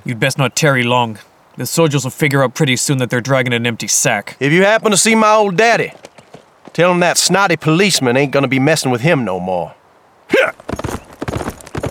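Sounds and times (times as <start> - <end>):
speech: 0.0 - 6.1, 6.7 - 11.0
hooves of a horse being ridden away: 4.6 - 8.1, 10.5 - 11.9.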